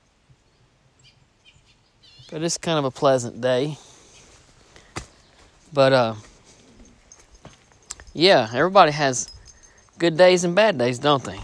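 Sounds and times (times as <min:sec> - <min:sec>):
faint bird chirps outdoors: 0:00.0 - 0:02.4
speech: 0:02.3 - 0:03.9, 0:05.8 - 0:06.3, 0:08.2 - 0:09.3, 0:10.0 - 0:11.4
light rustling: 0:03.0 - 0:10.1.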